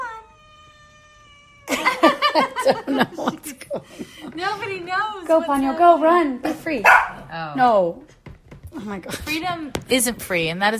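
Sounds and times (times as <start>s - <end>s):
cat meowing: 0.0s - 1.7s
laughter: 1.7s - 4.9s
speech: 2.6s - 8.1s, 8.7s - 10.7s.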